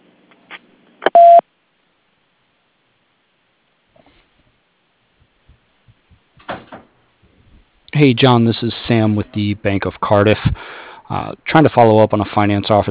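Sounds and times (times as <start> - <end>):
voicemail message tone, short steady electronic beep at mid pitch: 1.1 - 1.4
speech: 8.0 - 12.8.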